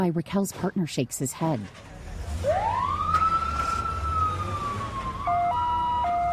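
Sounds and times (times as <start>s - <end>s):
speech: 0.0s - 2.7s
ambulance siren with rising wail and two-tone pattern: 2.4s - 6.3s.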